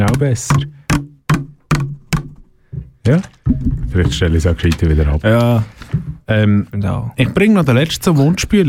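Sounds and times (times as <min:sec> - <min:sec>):
speech: 0:00.1 - 0:00.8, 0:03.1 - 0:08.6
microphone being handled: 0:02.7 - 0:06.3.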